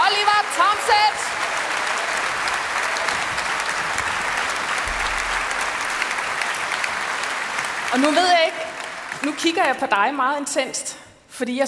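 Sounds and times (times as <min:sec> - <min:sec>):
applause from a sizable audience: 0:00.0 - 0:10.0
speech: 0:07.9 - 0:08.6, 0:09.2 - 0:11.6.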